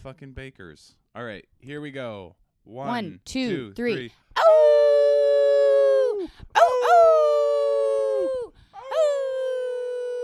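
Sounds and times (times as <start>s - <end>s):
speech: 0.0s - 4.8s, 6.2s - 7.5s
person imitating a dog howling and yelping: 4.4s - 10.2s.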